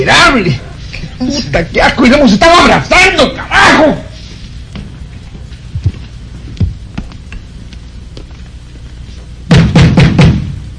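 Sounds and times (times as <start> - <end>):
speech: 0.0 - 4.1
heavy pounding on a door: 9.5 - 10.6.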